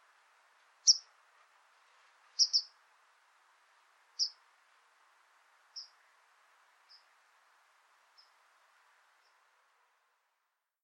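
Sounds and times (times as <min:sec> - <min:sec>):
steady low background hiss: 0:00.0 - 0:10.8
white wagtail short sharp high chirps: 0:02.4 - 0:02.7.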